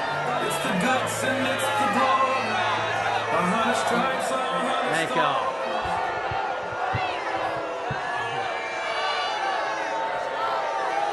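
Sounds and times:
large crowd booing and jeering at a political event in Pickens South Carolina: 0:00.0 - 0:11.1
speech: 0:00.7 - 0:02.2, 0:03.3 - 0:05.6
low thumps: 0:05.8 - 0:08.7.

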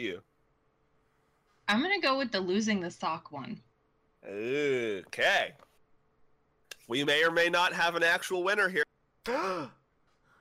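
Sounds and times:
speech: 0:00.0 - 0:00.3, 0:01.7 - 0:05.7, 0:06.9 - 0:09.8
person imitating a crowd's gasp with a vocal oh: 0:09.3 - 0:09.7.

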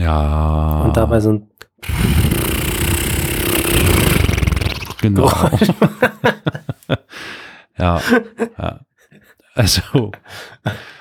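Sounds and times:
speech: 0:00.1 - 0:02.2, 0:05.0 - 0:08.9, 0:09.6 - 0:10.9
person blowing a raspberry imitating an airbag deflating: 0:01.8 - 0:05.1
laughter: 0:05.2 - 0:07.1.

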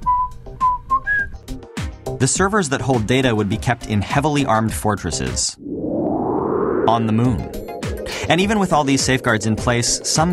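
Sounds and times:
person whistling a short tune: 0:00.0 - 0:01.4
speech: 0:02.2 - 0:05.7, 0:06.9 - 0:10.3.

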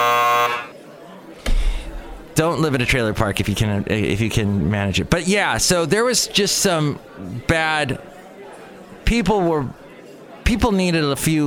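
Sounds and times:
game-show-style buzzer blaring: 0:00.0 - 0:00.7
speech: 0:02.4 - 0:08.1, 0:09.1 - 0:09.8, 0:10.5 - 0:11.4.

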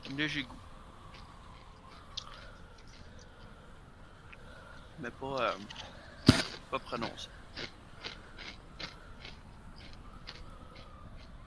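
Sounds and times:
speech: 0:00.1 - 0:00.6, 0:05.0 - 0:05.9, 0:06.7 - 0:07.7
crunching of potato chips: 0:07.5 - 0:11.3.

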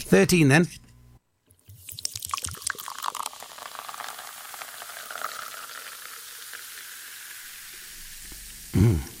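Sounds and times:
speech: 0:00.1 - 0:00.8
fizzy drink pouring into a glass: 0:01.6 - 0:08.6.

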